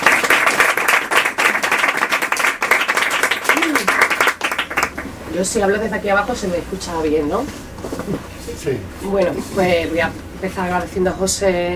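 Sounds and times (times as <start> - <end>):
audience applause at a book presentation: 0.0 - 5.2
speech: 5.4 - 11.7.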